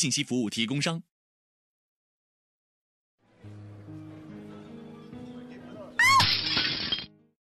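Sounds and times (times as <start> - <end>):
speech: 0.0 - 1.1
ceramic plate falling and shattering: 6.0 - 7.1.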